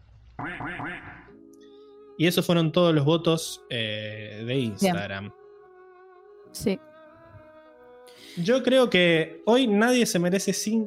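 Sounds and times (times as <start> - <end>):
speech: 0.4 - 1.3, 2.2 - 5.4, 6.5 - 6.9, 8.3 - 10.8
loud duck quacking: 0.4 - 1.4.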